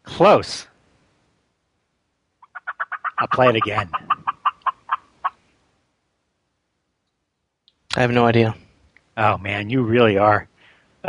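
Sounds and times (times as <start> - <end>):
speech: 0.2 - 0.7, 3.2 - 4.2, 8.0 - 8.6, 9.2 - 11.0
turkey gobbling: 2.4 - 5.4.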